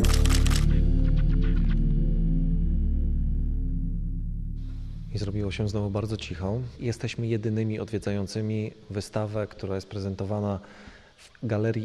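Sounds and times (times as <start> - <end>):
camera shutter clicking: 0.0 - 0.7
steady low electrical hum: 0.0 - 11.8
speech: 5.2 - 11.8.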